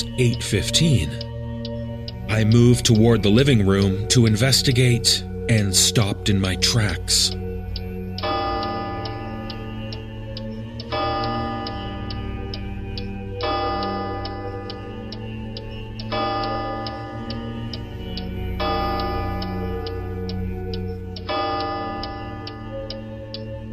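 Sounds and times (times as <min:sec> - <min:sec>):
speech: 0:00.0 - 0:01.3, 0:02.4 - 0:07.5
clock chiming in a quiet house: 0:00.0 - 0:23.7.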